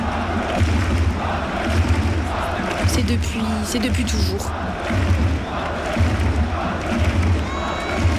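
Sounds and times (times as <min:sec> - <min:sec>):
large stadium crowd cheering and shouting: 0:00.0 - 0:08.1
speech: 0:03.0 - 0:05.7.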